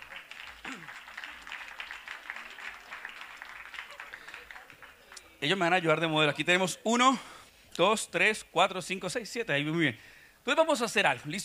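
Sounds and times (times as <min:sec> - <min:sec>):
audience applause: 0:00.0 - 0:05.4
speech: 0:05.4 - 0:11.4.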